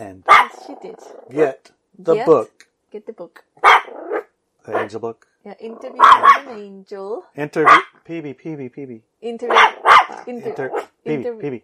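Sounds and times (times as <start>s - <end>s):
person imitating dog barking: 0.0s - 2.4s, 4.7s - 5.1s, 5.7s - 6.6s, 7.4s - 8.7s, 9.5s - 11.6s
speech: 0.0s - 3.9s, 4.7s - 11.6s.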